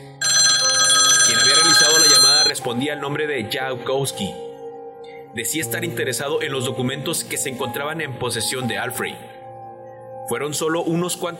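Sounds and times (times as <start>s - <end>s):
old-style telephone bell ringing: 0.0s - 2.6s
speech: 2.6s - 4.5s, 5.4s - 9.4s, 10.3s - 11.3s.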